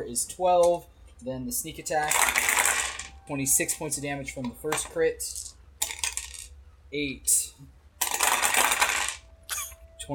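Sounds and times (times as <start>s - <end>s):
speech: 0.0s - 2.6s, 3.3s - 5.6s, 6.9s - 7.7s
many dice rolling and clattering: 2.0s - 3.1s, 4.7s - 6.6s, 8.0s - 9.3s.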